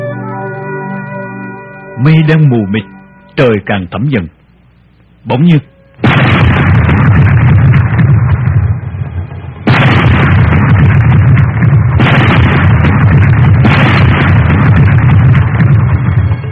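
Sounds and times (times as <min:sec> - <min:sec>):
speech: 0:02.1 - 0:04.4, 0:05.2 - 0:05.7
gunfire bursts: 0:06.0 - 0:08.7, 0:09.7 - 0:16.4.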